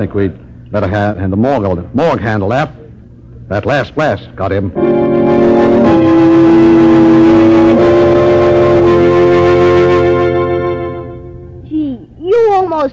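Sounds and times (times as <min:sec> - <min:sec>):
speech: 0:00.0 - 0:02.8, 0:03.5 - 0:07.1
car engine rumbling and accelerating away: 0:04.8 - 0:11.3.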